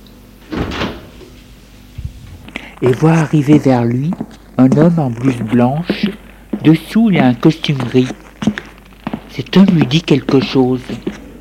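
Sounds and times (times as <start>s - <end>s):
door swinging open with a breathy scrape: 0.4s - 1.4s
speech: 2.8s - 8.2s, 9.4s - 11.2s.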